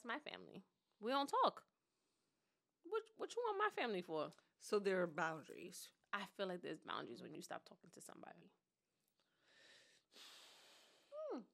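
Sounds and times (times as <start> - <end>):
speech: 0.0 - 1.7, 2.9 - 8.6, 10.1 - 10.4, 11.3 - 11.5
heavy breathing: 9.4 - 11.2.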